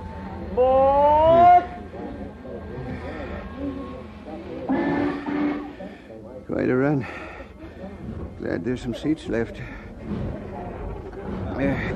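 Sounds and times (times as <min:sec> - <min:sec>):
speech: 0:00.6 - 0:00.8, 0:08.6 - 0:10.3, 0:11.6 - 0:11.9
train whistle: 0:00.6 - 0:01.8, 0:04.7 - 0:05.8.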